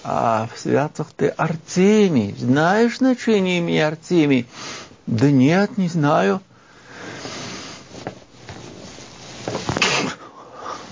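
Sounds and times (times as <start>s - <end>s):
speech: 0.0s - 6.5s
steady hiss: 0.0s - 10.9s
person sneezing: 9.7s - 10.9s.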